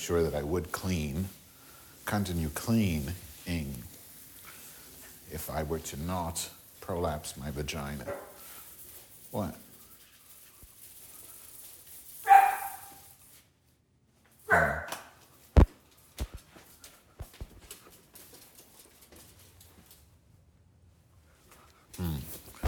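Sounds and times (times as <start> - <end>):
speech: 0.0 - 1.4, 2.1 - 4.0, 5.3 - 8.3, 9.3 - 9.6
dog barking: 8.1 - 8.4, 12.2 - 13.0, 14.5 - 15.0.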